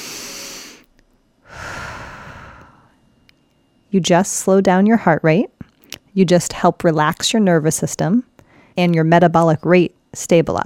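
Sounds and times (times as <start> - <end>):
people taking a deep inhale and long exhale: 0.0 - 3.1, 8.4 - 8.8
speech: 3.9 - 5.5, 6.2 - 10.6.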